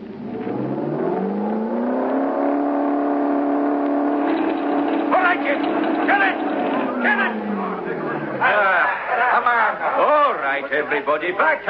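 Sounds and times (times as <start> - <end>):
car engine revving at full throttle during a road test: 0.0 - 9.1
speech: 9.4 - 11.6.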